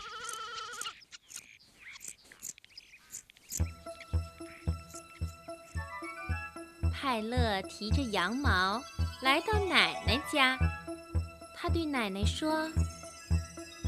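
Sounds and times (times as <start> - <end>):
lamb bleating: 0.0 - 1.0
beat-driven melody: 3.6 - 13.8
speech: 7.0 - 11.0, 11.6 - 12.9.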